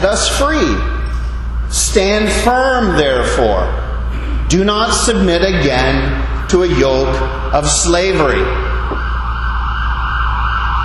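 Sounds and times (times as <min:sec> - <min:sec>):
speech: 0:00.0 - 0:00.9, 0:01.7 - 0:03.8, 0:04.5 - 0:09.1
low rumble of traffic: 0:00.0 - 0:10.8
emergency vehicle siren wailing: 0:08.2 - 0:10.8.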